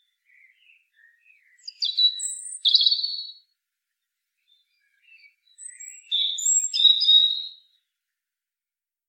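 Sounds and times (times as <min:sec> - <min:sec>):
European robin Erithacus rubecula song: 0:00.0 - 0:03.5, 0:04.4 - 0:07.9.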